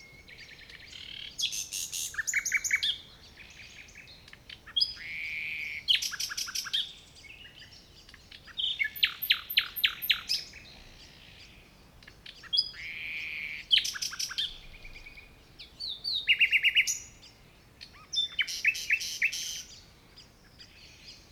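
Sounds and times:
common nightingale Luscinia megarhynchos singing: 0.0 - 21.3.

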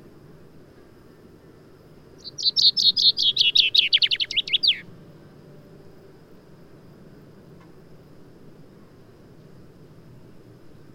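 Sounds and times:
Fringilla coelebs common chaffinch singing: 2.2 - 4.9.

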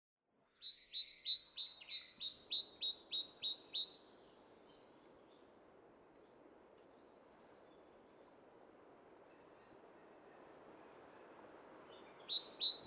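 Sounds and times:
faint background hiss: 0.4 - 12.8
great tit Parus major singing two-note phrases: 0.6 - 4.0, 12.3 - 12.8.

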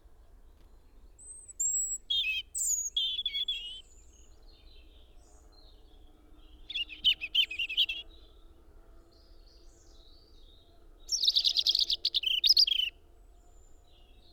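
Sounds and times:
European robin Erithacus rubecula song: 1.0 - 5.4, 6.4 - 8.3, 11.1 - 13.0.

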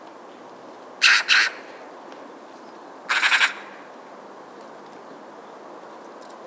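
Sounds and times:
Eurasian magpie Pica pica giving harsh rasping calls: 1.0 - 1.7, 3.1 - 3.8.

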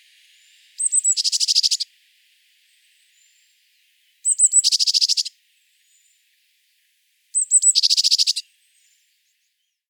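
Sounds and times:
Eurasian blue tit Cyanistes caeruleus calling: 0.8 - 1.8, 4.2 - 5.3, 7.4 - 8.4.

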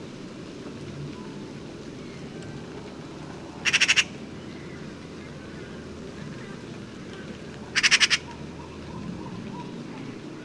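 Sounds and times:
Eurasian magpie Pica pica rattle call: 3.6 - 4.1, 7.7 - 8.3.

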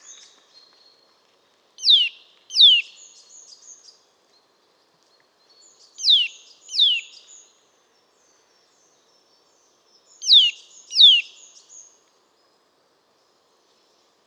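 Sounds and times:
Eurasian nuthatch Sitta europaea downward-sweeping whistled calls: 6.0 - 7.2, 10.2 - 11.3.

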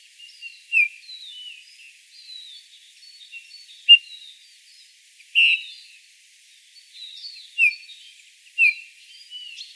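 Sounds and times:
Eurasian bullfinch Pyrrhula pyrrhula whistled call notes: 5.4 - 5.7, 8.6 - 8.8.

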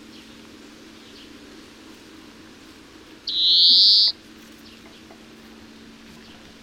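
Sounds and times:
European greenfinch Chloris chloris buzzy wheeze: 3.3 - 4.1.

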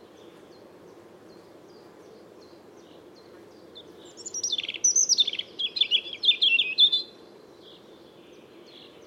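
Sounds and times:
European robin Erithacus rubecula singing: 0.0 - 9.0.

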